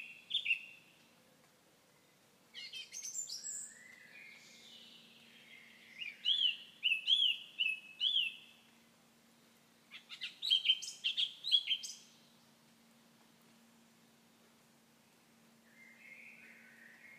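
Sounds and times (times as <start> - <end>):
common nightingale whistling and chattering: 0.0 - 1.0, 1.9 - 8.7, 9.3 - 12.6, 15.6 - 17.1.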